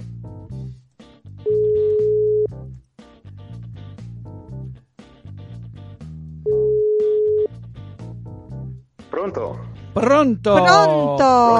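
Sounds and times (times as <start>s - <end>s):
telephone ringback tone on an outgoing call: 1.5s - 2.5s, 6.5s - 7.5s
speech: 9.2s - 11.5s.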